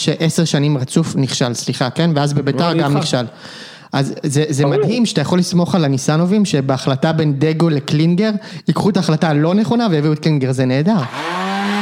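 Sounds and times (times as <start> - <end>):
speech: 0.0 - 11.4
blender motor running with a high-pitched whir: 11.0 - 11.7.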